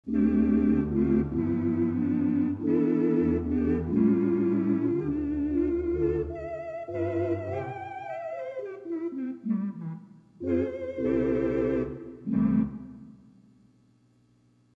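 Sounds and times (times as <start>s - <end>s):
theatre organ with 8' Tibia and 8' Vox stops: 0.0s - 13.2s.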